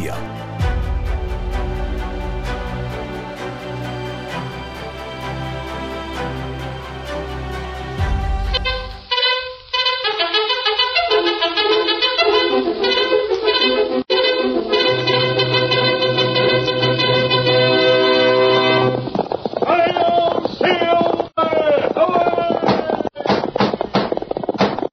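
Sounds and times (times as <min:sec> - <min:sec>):
brassy orchestral music: 0:00.0 - 0:19.0
galloping horse hoofbeats: 0:18.6 - 0:24.9.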